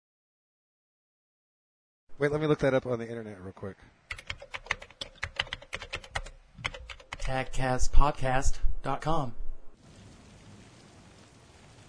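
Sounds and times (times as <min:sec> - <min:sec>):
speech: 0:02.2 - 0:04.3, 0:07.3 - 0:09.4
heavy rain pouring: 0:09.8 - 0:11.8.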